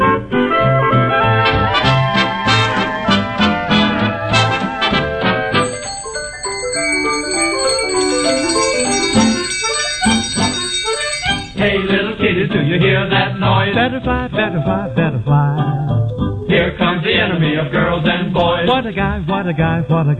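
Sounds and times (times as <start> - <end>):
busy musical accompaniment: 0.0 - 20.1
hand bell ringing in bright loud jingles: 5.6 - 11.6
speech: 13.8 - 15.9, 18.8 - 20.1.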